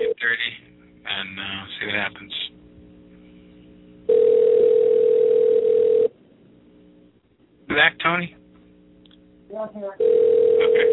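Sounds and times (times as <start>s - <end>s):
quiet telephone line noise: 0.0s - 10.9s
telephone ringback tone on an unanswered outgoing call: 4.1s - 6.1s, 10.0s - 10.9s.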